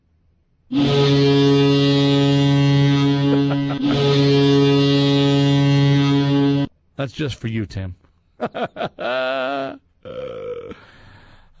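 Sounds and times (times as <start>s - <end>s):
stadium foghorn blast at an American football game: 0.7s - 6.7s
laughter: 3.2s - 4.3s, 8.4s - 9.8s
speech: 7.0s - 9.8s.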